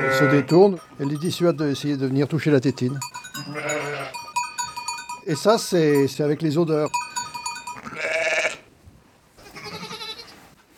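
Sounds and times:
ewes and lambs bleating in a flock: 0.0s - 0.7s, 3.4s - 4.3s, 7.6s - 8.7s, 9.4s - 10.4s
speech: 0.0s - 3.7s, 5.3s - 7.0s.

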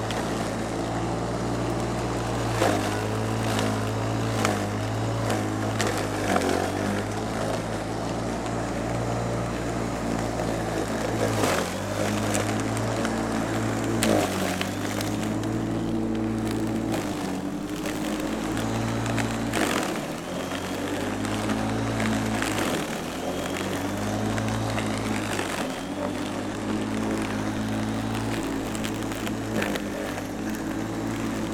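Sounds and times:
old electric lawn mower humming while mowing grass: 0.0s - 31.5s.

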